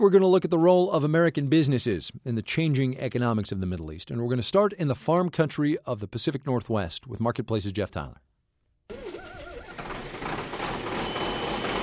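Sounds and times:
speech: 0:00.0 - 0:08.3
tractor engine starting during a tune-up on a wheat farm: 0:08.9 - 0:11.8.

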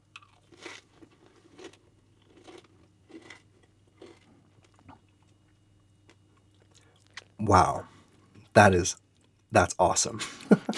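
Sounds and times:
crunchy chewing of caramelized amaranth with maple sugar: 0:00.0 - 0:08.3
speech: 0:07.4 - 0:07.9, 0:08.6 - 0:10.7.

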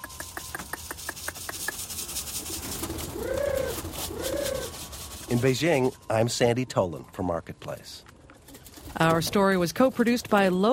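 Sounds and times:
pigeons cooing at a pigeon coop in a Beijing hutong: 0:00.3 - 0:05.3
speech: 0:05.3 - 0:08.1, 0:09.0 - 0:10.7.

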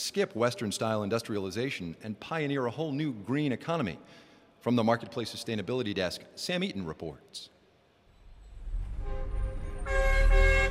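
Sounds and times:
speech: 0:00.1 - 0:07.6
car horns honking in a smoggy traffic jam: 0:09.0 - 0:10.6.

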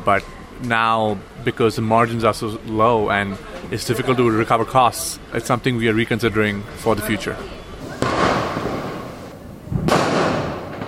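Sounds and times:
speech: 0:00.0 - 0:07.6
fireworks crackling rumble: 0:00.0 - 0:10.8
fireworks exploding at night: 0:07.8 - 0:10.8.

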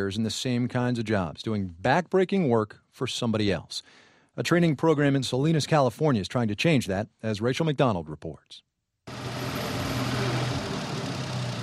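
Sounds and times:
speech: 0:00.0 - 0:09.4
tractor engine idling on a farm in Salinas California: 0:09.1 - 0:11.6.

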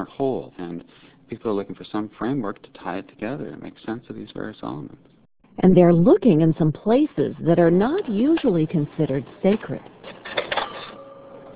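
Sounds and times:
faint steady hum: 0:00.0 - 0:11.5
speech: 0:00.1 - 0:10.0
bookstore cash register ringing up a sale: 0:09.5 - 0:11.5.

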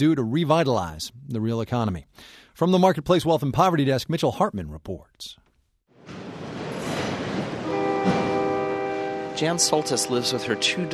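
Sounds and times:
speech: 0:00.0 - 0:05.4, 0:09.4 - 0:10.9
train rumbling on railroad tracks: 0:06.0 - 0:10.9
horn-like harmonic tone of train: 0:07.4 - 0:10.9.

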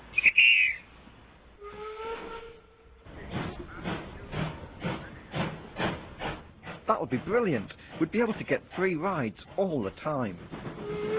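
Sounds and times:
brief whistle-like tone: 0:00.2 - 0:00.8
steam locomotive at a station platform hissing and letting off steam: 0:01.6 - 0:11.1
rhythmic moderately loud steam locomotive puffs: 0:03.1 - 0:10.1
speech: 0:06.9 - 0:10.7.

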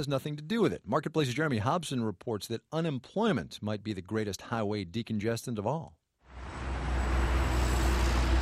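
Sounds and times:
speech: 0:00.0 - 0:06.6
traffic moving on a Los Angeles road: 0:06.3 - 0:08.4.

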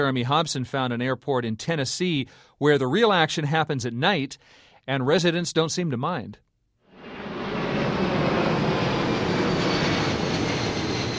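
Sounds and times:
speech: 0:00.0 - 0:06.5
plane flying low over a leafy residential neighborhood in an airport flight path: 0:06.9 - 0:11.1.

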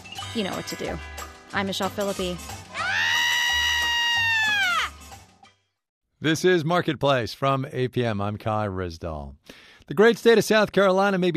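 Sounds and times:
speech: 0:00.4 - 0:02.5, 0:06.2 - 0:11.3
person screaming in frustration: 0:02.7 - 0:05.0.

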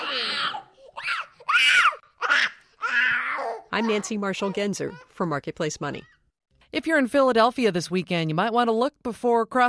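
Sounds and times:
toddler screaming in a temper tantrum: 0:00.0 - 0:05.0
speech: 0:03.8 - 0:09.6.

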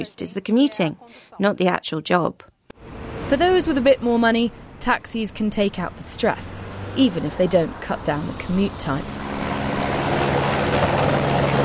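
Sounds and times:
speech: 0:00.0 - 0:02.5, 0:03.3 - 0:09.2
helicopter flying as an air taxi in Sao Paulo: 0:02.8 - 0:11.6.

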